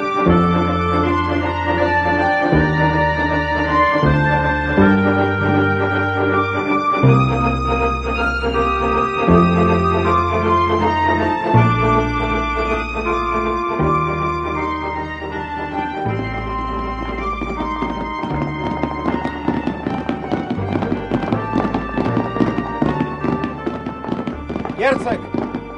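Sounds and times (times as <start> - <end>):
sustained orchestral music: 0.0 - 25.7
galloping hoofbeats of two horses: 15.6 - 25.7.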